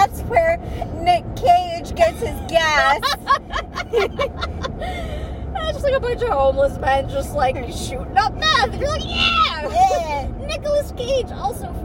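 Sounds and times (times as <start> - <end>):
road noise in a moving car cabin: 0.0 - 11.8
people laughing: 2.1 - 5.3
speech: 6.0 - 11.8.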